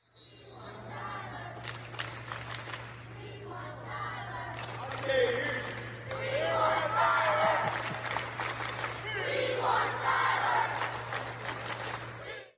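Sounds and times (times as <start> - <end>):
steady low hum: 0.0 - 12.5
large group of young basketball campers chanting in unison in an echoing hall: 0.3 - 1.9, 3.0 - 8.0, 9.0 - 11.4, 12.2 - 12.5.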